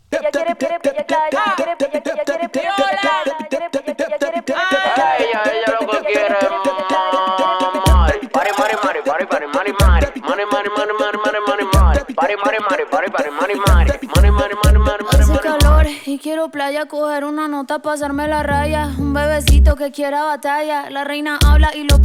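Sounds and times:
female vocal singing melodic lines in a dembow track: 0:00.0 - 0:12.1, 0:13.1 - 0:22.0
tight steady percussive dembow beat: 0:00.1 - 0:10.4, 0:11.2 - 0:12.2, 0:13.5 - 0:15.9, 0:19.4 - 0:19.8, 0:21.4 - 0:22.0
speech: 0:00.3 - 0:01.9, 0:12.5 - 0:15.0, 0:16.1 - 0:22.0.

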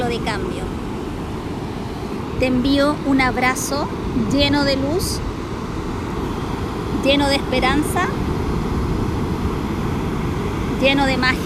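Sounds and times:
ocean waves breaking on shore: 0:00.0 - 0:11.4
speech: 0:00.1 - 0:00.9, 0:02.4 - 0:05.3, 0:07.0 - 0:08.3, 0:10.8 - 0:11.4.

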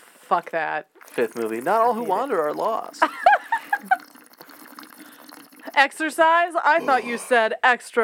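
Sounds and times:
speech: 0:00.3 - 0:03.2, 0:05.8 - 0:08.0
water sloshing inside a water bottle: 0:00.4 - 0:05.9.

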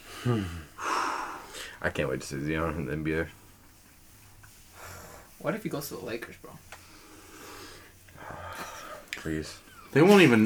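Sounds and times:
heavy wheezing breathing: 0:00.0 - 0:01.8, 0:04.7 - 0:05.4, 0:06.9 - 0:09.7
speech: 0:00.2 - 0:00.7, 0:01.8 - 0:03.4, 0:05.4 - 0:06.8, 0:09.2 - 0:10.4.

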